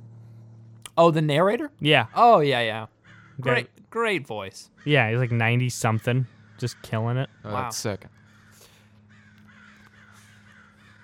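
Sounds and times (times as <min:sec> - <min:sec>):
steady low hum: 0:00.0 - 0:11.0
speech: 0:01.0 - 0:08.2
crows cawing: 0:02.0 - 0:03.8, 0:04.6 - 0:11.0.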